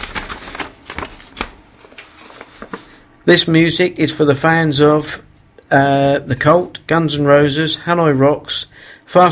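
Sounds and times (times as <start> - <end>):
paper pages rustling and shuffling: 0.0 - 3.1
speech: 3.2 - 9.3.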